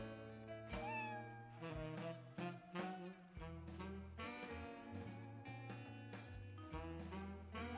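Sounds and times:
steady tonal music-like backing: 0.0 - 7.7
cat meowing in drawn-out wavering cries: 0.7 - 1.8.

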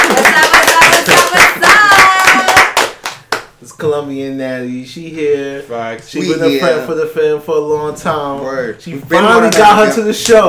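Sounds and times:
small crowd applauding: 0.0 - 3.4
speech: 4.0 - 10.4.

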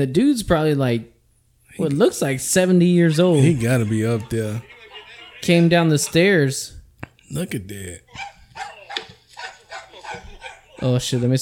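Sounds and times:
speech: 0.0 - 1.1, 1.8 - 4.8, 5.4 - 8.7, 10.8 - 11.4
laughter: 3.2 - 6.5, 7.4 - 11.3
dog barking in sharp yappy barks: 8.1 - 11.4.

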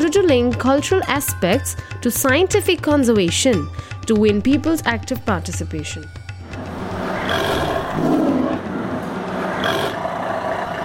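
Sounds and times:
speech: 0.1 - 6.2
tiger roaring in a dense Indian forest: 6.7 - 10.8.

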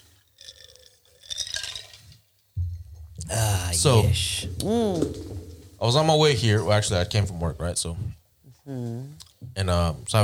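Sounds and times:
glasses clinking together in a toast: 0.0 - 2.3
dull low thump: 2.6 - 3.2
speech: 3.3 - 10.2.

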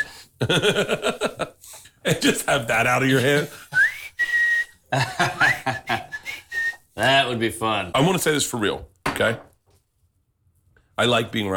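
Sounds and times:
person whistling: 0.0 - 0.2, 3.7 - 6.9
laughter: 0.0 - 3.9, 4.9 - 6.3
speech: 0.4 - 3.7, 4.9 - 6.1, 7.0 - 9.5, 11.0 - 11.5.

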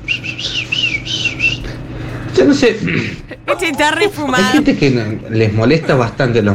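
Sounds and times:
low hum: 0.0 - 6.5
small birds chirping: 0.1 - 1.7
speech: 2.4 - 6.5.

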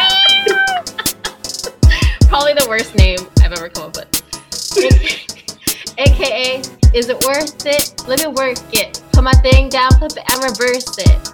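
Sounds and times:
cat meowing: 0.0 - 1.0
louder rougher cat cry: 0.0 - 1.2
laughter: 0.0 - 2.1, 4.8 - 5.9
speech: 2.4 - 5.3, 6.0 - 11.3.

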